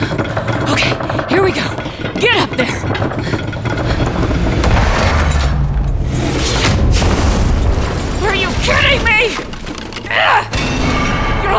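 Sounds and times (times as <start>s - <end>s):
debris-like crackling bursts from an explosion: 0.0s - 11.5s
explosion blowing open an entrance during a battle: 4.1s - 8.6s.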